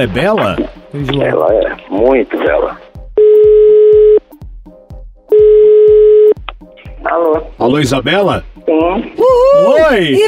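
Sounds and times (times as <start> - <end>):
speech: 0.0 - 2.8, 7.1 - 10.2
telephone ringback tone as a phone call is placed: 3.2 - 4.2, 5.3 - 6.4.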